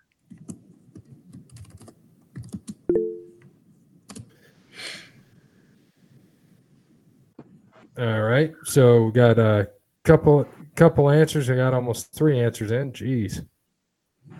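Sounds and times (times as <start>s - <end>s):
typing on a computer keyboard into a chat box: 0.3s - 2.8s, 4.1s - 4.3s
speech: 8.0s - 13.5s.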